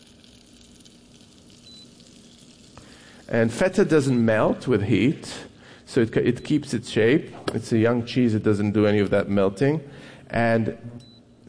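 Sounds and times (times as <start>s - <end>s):
hot oil with spices and lemon sizzling over feta: 0.0s - 3.4s
speech: 3.3s - 11.1s.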